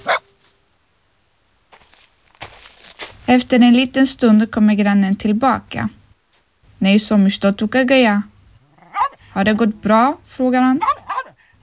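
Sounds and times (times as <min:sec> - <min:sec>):
dog barking: 0:00.0 - 0:00.3, 0:08.8 - 0:09.3, 0:10.8 - 0:11.6
rustling and shuffling: 0:00.0 - 0:05.0, 0:05.6 - 0:06.9
speech: 0:03.3 - 0:06.0, 0:06.8 - 0:08.3, 0:09.4 - 0:10.9.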